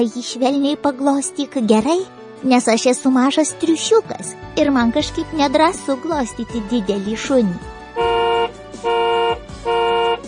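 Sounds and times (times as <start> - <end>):
speech: 0.0 - 8.1
car horn blasts from a vehicle coming along a road: 8.0 - 10.2.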